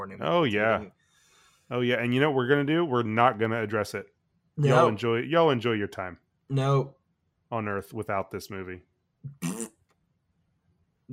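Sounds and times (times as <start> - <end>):
speech: 0.0 - 1.0, 1.7 - 9.6
fart sound: 9.3 - 9.7.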